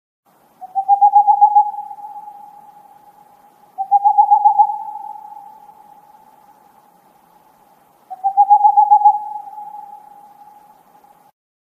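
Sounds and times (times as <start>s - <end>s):
owl: 0.6s - 6.6s, 8.1s - 11.3s.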